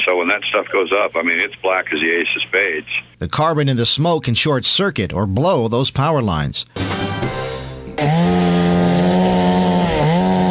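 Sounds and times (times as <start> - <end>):
speech: 0.0 - 7.2, 8.0 - 8.7
firefighters' chainsaws cutting fallen trees at a smoky fire scene: 6.9 - 10.4.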